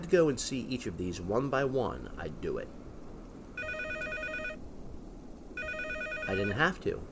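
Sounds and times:
low hum: 0:00.0 - 0:07.0
speech: 0:00.1 - 0:02.8, 0:06.3 - 0:07.0
phone ringing with a trilling electronic tone: 0:03.6 - 0:04.6, 0:05.6 - 0:06.6.

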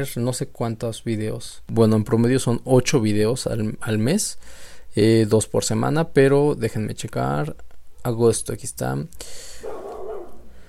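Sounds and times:
speech: 0:00.0 - 0:09.6
steady low hiss: 0:00.0 - 0:10.6
dog giving a drawn-out bark or yelp: 0:09.6 - 0:10.5.

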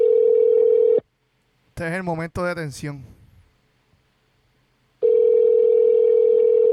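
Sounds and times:
telephone ringback tone on an unanswered call: 0:00.0 - 0:01.0, 0:05.0 - 0:06.7
speech: 0:01.8 - 0:03.2.

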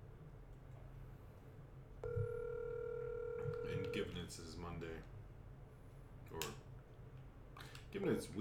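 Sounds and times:
telephone ringback tone during a call: 0:02.0 - 0:04.1
speech: 0:04.0 - 0:05.2, 0:06.3 - 0:06.6, 0:07.9 - 0:08.3.

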